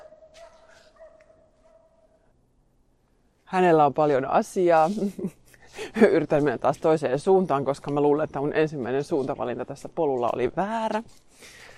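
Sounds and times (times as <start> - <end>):
dog barking: 0.0 - 2.3
speech: 3.5 - 5.4, 6.0 - 11.6
laughter: 4.9 - 6.1.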